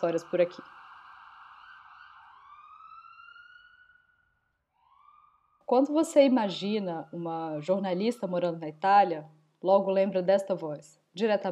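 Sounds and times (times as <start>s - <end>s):
speech: 0.0s - 0.8s, 5.7s - 11.5s
ambulance siren wailing as it passes: 0.0s - 8.6s.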